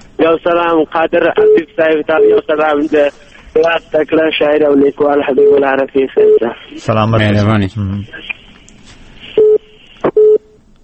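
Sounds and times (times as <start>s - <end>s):
speech: 0.2s - 8.4s
phone line beeps after a dropped call: 5.3s - 6.5s, 9.4s - 10.6s.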